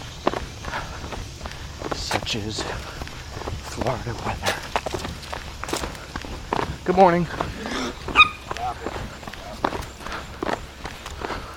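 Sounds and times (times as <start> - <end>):
pattering footsteps: 0.0 - 11.5
speech: 2.1 - 4.7, 6.9 - 7.8
small Jack Russell Terrier-Chihuahua type dog giving a sharp high-pitched bark: 7.8 - 9.6.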